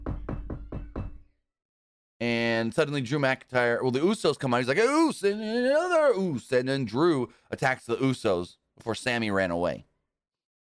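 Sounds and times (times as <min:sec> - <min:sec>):
firm knocks on a wooden door: 0:00.0 - 0:01.2
speech: 0:02.2 - 0:09.9.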